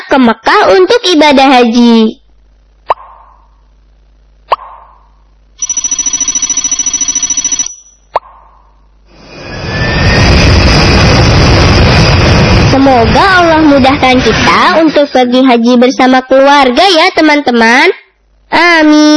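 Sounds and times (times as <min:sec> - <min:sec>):
speech: 0:00.1 - 0:02.2, 0:12.9 - 0:19.1
pulsing electronic ringing tone: 0:05.6 - 0:08.1
jet airplane engine roaring with whining rumble: 0:09.2 - 0:14.5.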